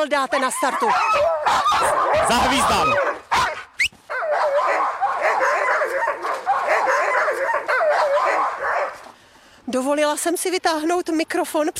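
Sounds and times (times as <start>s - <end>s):
speech: 0.0s - 3.2s, 9.7s - 11.7s
pack of sled dogs barking and yipping excitedly: 0.2s - 9.1s.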